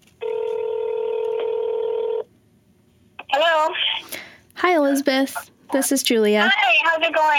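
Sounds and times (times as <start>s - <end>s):
long steady phone ring tone: 0.2s - 2.3s
speech: 4.6s - 7.3s.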